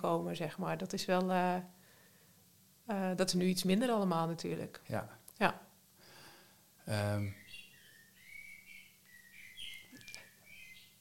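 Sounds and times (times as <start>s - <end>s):
speech: 0.0s - 1.8s, 2.9s - 5.6s, 6.9s - 7.4s
faint low hum: 0.0s - 10.9s
bird clock chiming a recorded blackbird song: 7.3s - 10.9s.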